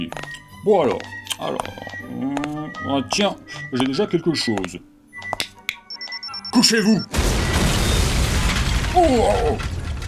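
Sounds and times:
speech: 0.0 - 4.9, 6.6 - 7.2, 9.0 - 9.7
grenade set off by a tripwire exploding: 7.1 - 10.0.

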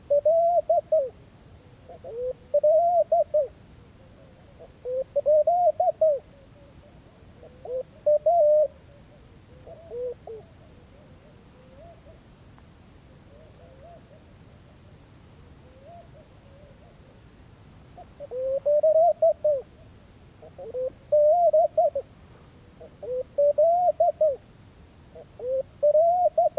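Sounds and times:
male laughing dove Streptopelia senegalensis cooing at daybreak: 0.0 - 1.2, 1.9 - 3.6, 4.2 - 6.7, 7.4 - 12.2, 18.0 - 19.8, 20.4 - 22.1, 22.8 - 24.4, 25.2 - 26.5.

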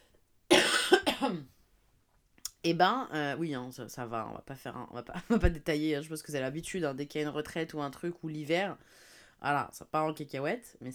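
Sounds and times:
person coughing: 0.5 - 1.5
speech: 2.6 - 10.9.

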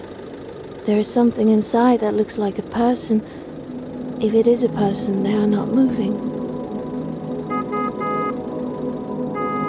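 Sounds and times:
steady low rumble of traffic or an idling engine: 0.0 - 9.6
speech: 0.8 - 3.5, 4.2 - 6.4
car horn honking: 6.2 - 9.6.

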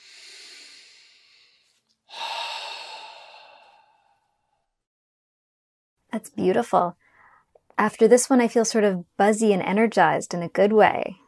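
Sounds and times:
long airy breaths during a relaxation exercise: 0.0 - 4.6
speech: 6.2 - 7.0, 7.8 - 11.2.

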